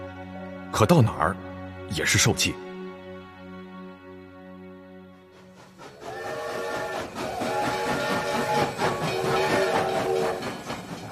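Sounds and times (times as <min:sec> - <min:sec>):
speech: 0:00.7 - 0:02.6
fast train sustained tonal hum: 0:03.7 - 0:11.1
fast train wheels clattering on track past the Shanhaiguan pass: 0:05.4 - 0:11.1.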